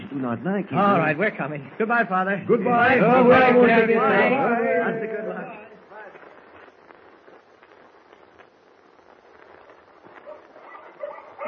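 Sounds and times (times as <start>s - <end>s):
speech: 0.2s - 5.7s
pack of huskies barking: 10.2s - 11.4s.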